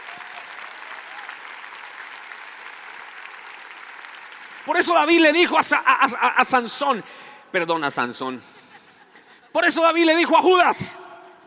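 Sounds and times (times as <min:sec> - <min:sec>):
crowd applauding: 0:00.0 - 0:05.5
speech: 0:04.6 - 0:08.6, 0:09.5 - 0:11.1.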